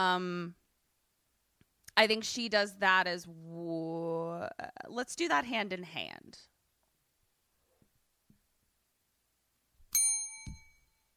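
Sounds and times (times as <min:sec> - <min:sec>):
speech: 0:00.0 - 0:00.6, 0:02.0 - 0:06.5
bright bell ding: 0:09.9 - 0:11.1.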